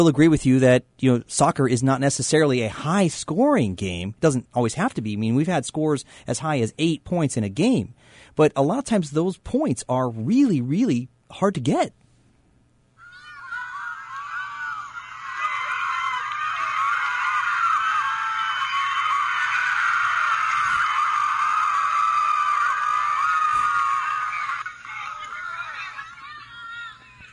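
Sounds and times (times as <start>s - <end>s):
speech: 0.0s - 12.0s
large crowd screaming and roaring at a soccer game: 13.0s - 27.2s.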